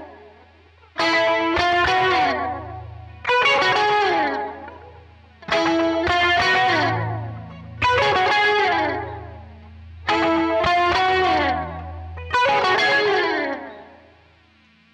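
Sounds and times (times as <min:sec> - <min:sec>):
musical solo: 0:01.0 - 0:13.9.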